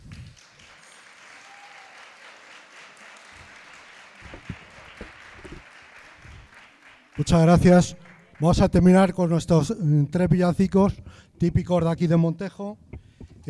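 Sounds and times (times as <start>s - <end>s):
audience applause at a charity concert in a church: 0.0s - 9.2s
speech: 7.2s - 12.8s.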